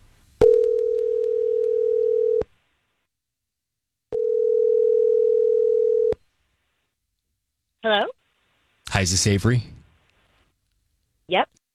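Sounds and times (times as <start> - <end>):
telephone ringback tone: 0.4 - 2.4, 4.2 - 6.2
speech: 7.8 - 8.1, 9.0 - 9.8.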